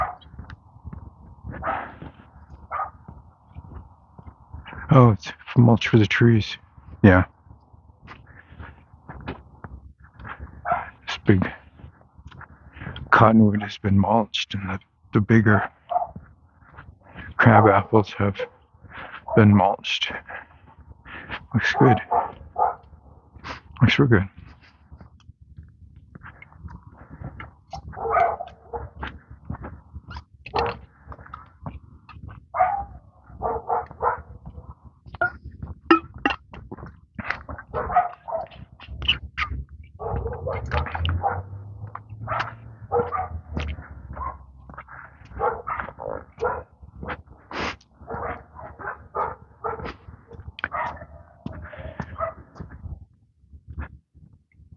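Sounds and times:
dog barking: 0:00.0 - 0:00.3, 0:01.5 - 0:03.0, 0:10.6 - 0:11.0, 0:15.6 - 0:16.3, 0:18.4 - 0:18.6, 0:21.7 - 0:23.0, 0:27.7 - 0:29.0, 0:30.5 - 0:30.9, 0:32.5 - 0:34.6, 0:37.7 - 0:38.6, 0:40.0 - 0:41.6, 0:42.2 - 0:44.5, 0:45.2 - 0:46.7, 0:48.0 - 0:52.5
speech: 0:04.9 - 0:07.3, 0:11.3 - 0:11.5, 0:13.2 - 0:15.8, 0:17.5 - 0:18.5, 0:19.4 - 0:20.3, 0:21.5 - 0:22.1, 0:23.8 - 0:24.4.

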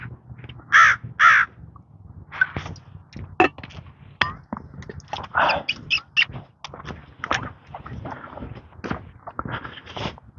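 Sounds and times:
faint outdoor rustling: 0:00.0 - 0:10.3
footsteps: 0:00.0 - 0:10.3
crows cawing: 0:00.7 - 0:01.6.

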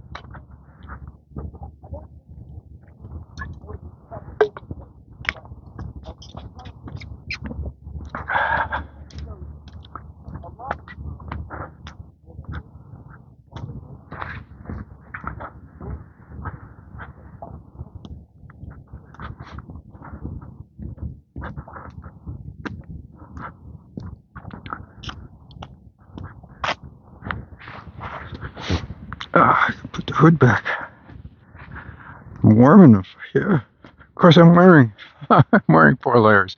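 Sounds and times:
steady low outdoor rumble: 0:00.0 - 0:36.5
sparrows chirping: 0:06.1 - 0:07.5
speech: 0:30.2 - 0:30.7, 0:32.6 - 0:36.5.

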